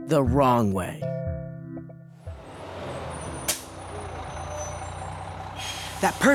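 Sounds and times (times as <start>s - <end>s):
speech: 0.1s - 1.1s, 6.0s - 6.3s
bus rumbling with a deep idling engine: 2.2s - 6.3s
bus air brakes hissing: 2.8s - 6.3s.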